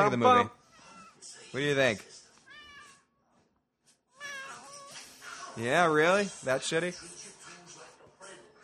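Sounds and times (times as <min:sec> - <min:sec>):
speech: 0:00.0 - 0:00.6, 0:01.2 - 0:02.1, 0:05.6 - 0:07.2
cat meowing: 0:02.5 - 0:03.1, 0:04.1 - 0:05.1.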